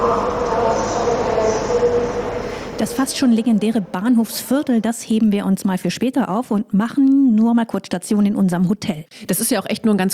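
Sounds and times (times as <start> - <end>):
main railway station ambience in Frankfurt: 0.0 - 5.5
speech: 2.8 - 10.1.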